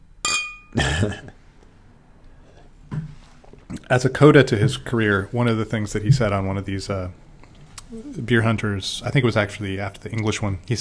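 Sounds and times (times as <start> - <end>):
two glasses clinking in a toast: 0.2 - 0.8
speech: 0.8 - 1.4, 3.9 - 7.3, 7.9 - 10.7
faint soft sound: 2.2 - 10.7.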